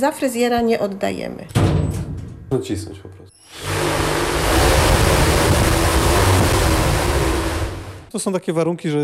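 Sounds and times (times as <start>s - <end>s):
speech: 0.0s - 4.8s, 8.1s - 9.0s
strong wind from a pedal-operated hurricane simulator: 3.6s - 8.1s.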